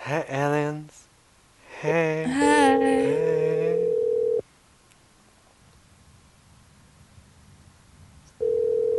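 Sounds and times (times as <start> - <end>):
speech: 0.1 - 1.0, 1.8 - 3.4
phone ringback tone on an outgoing call: 3.1 - 4.4, 8.4 - 8.9.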